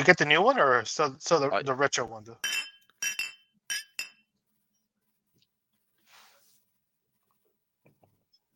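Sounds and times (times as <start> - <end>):
speech: 0.0 - 3.2
glasses clinking in a toast with extra reverb: 2.4 - 4.2
soft hiss: 5.4 - 6.8.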